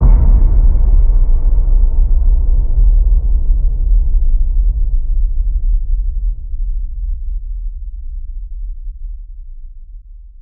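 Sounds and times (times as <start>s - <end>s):
low impact hit: 0.0s - 9.1s.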